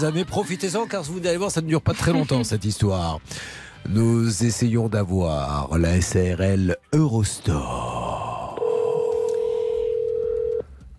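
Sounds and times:
laughter: 0.0 - 2.7
speech: 0.0 - 7.9
telephone ringing tone on an outgoing long-distance call: 8.6 - 10.7.

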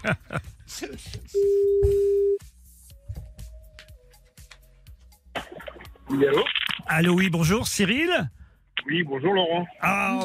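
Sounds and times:
speech: 0.0 - 2.1, 6.1 - 10.2
telephone ringback tone on an outgoing on-air call: 1.4 - 2.4.

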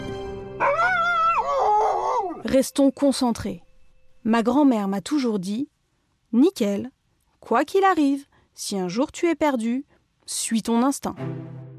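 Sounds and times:
dog yelping howl of fright launching down a slide: 0.6 - 2.5
speech: 2.5 - 3.6, 4.2 - 5.7, 6.3 - 11.6.

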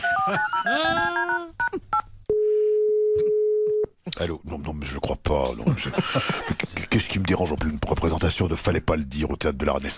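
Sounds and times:
speech: 0.2 - 1.4, 4.2 - 9.9
steady telephone tone as a phone call is placed: 2.3 - 3.9.

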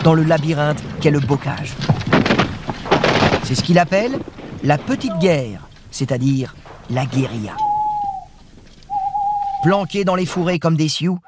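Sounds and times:
speech: 0.0 - 2.0, 3.5 - 7.7, 9.6 - 11.2
owl hooting: 4.9 - 5.6, 7.2 - 10.4.

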